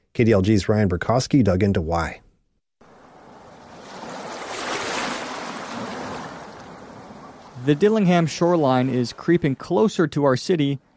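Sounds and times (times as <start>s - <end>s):
speech: 0.2s - 2.2s, 7.6s - 10.9s
ocean waves crashing on an eroding shoreline of Bristol Bay in Western Alaska: 2.8s - 10.7s.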